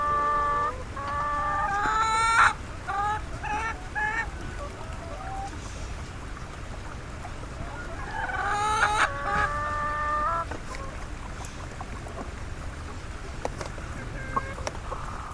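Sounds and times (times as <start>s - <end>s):
caged chickens in Nepal squawking and cackling: 0.0s - 15.3s
scattered clicks: 4.0s - 5.6s.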